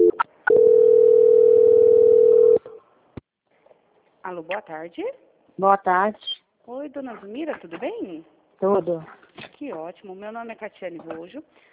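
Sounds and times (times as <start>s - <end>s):
long steady telephone call-transfer tone: 0.0s - 2.8s
speech: 4.3s - 11.7s.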